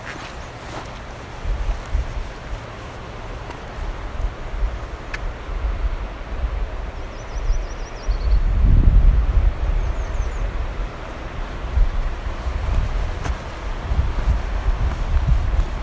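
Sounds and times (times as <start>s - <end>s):
heavy wind rumble: 0.0s - 15.8s
American Redstart song: 6.9s - 8.6s, 9.7s - 10.6s.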